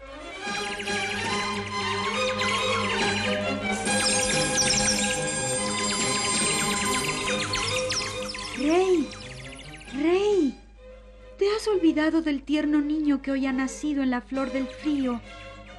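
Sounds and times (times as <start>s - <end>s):
continuous tonal background: 0.0s - 15.7s
robin singing on a snow-covered palace balcony railing: 3.8s - 10.6s, 14.1s - 15.2s
speech: 11.9s - 15.4s.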